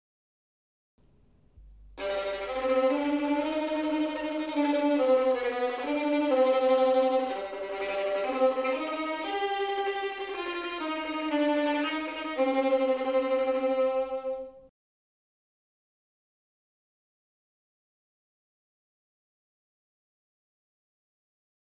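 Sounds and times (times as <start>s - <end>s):
violin tremolo: 2.0s - 14.6s.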